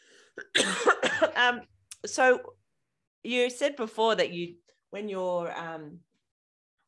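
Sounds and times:
person coughing: 0:00.4 - 0:01.4
speech: 0:01.4 - 0:02.6, 0:03.2 - 0:06.1.

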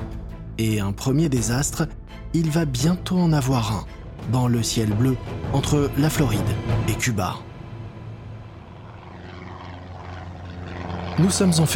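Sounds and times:
speech: 0:00.6 - 0:07.5, 0:11.2 - 0:11.7
twin-engine propeller planes droning overhead: 0:02.4 - 0:11.7.

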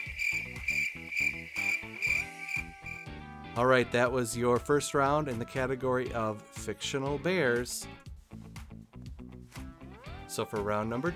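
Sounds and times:
crickets chirping in a steady high trill: 0:00.0 - 0:03.1
speech: 0:03.6 - 0:08.0, 0:10.4 - 0:11.1.

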